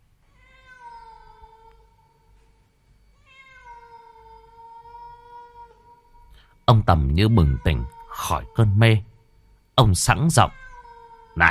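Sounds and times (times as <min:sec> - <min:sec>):
cat meowing mournfully: 0:00.3 - 0:02.1, 0:03.2 - 0:06.3, 0:07.3 - 0:08.8, 0:10.4 - 0:11.4
speech: 0:06.7 - 0:09.1, 0:09.8 - 0:10.6.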